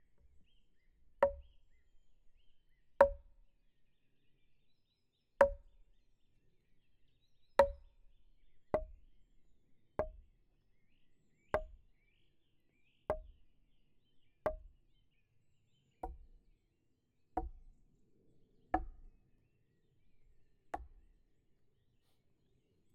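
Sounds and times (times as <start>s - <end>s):
mallet hitting wooden logs: 1.2s - 1.5s, 3.0s - 3.3s, 5.4s - 5.7s, 7.6s - 7.9s, 10.0s - 10.2s, 11.6s - 11.8s, 13.1s - 13.3s, 14.5s - 14.7s, 16.0s - 16.2s, 17.4s - 17.7s, 18.8s - 19.1s, 20.8s - 21.0s.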